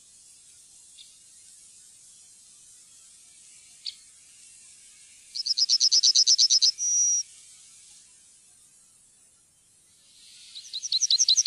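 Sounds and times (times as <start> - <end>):
Yellowhammer singing: 5.3 - 7.4, 9.6 - 11.4.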